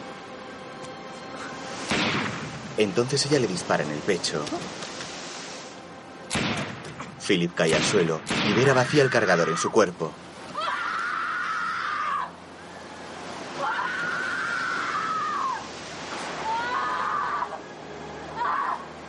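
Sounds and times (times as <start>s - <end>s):
surf noise: 0.0s - 19.0s
speech: 2.8s - 4.9s, 7.3s - 10.3s
young woman screaming desperately on the seashore: 10.5s - 12.4s, 13.6s - 15.7s, 16.4s - 17.6s, 18.3s - 18.9s.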